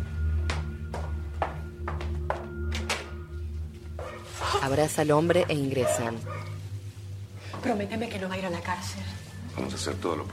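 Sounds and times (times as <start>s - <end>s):
woman's footsteps going down a staircase: 0.0s - 4.6s
steady low hum: 0.0s - 10.3s
speech: 4.6s - 6.5s, 7.6s - 10.3s.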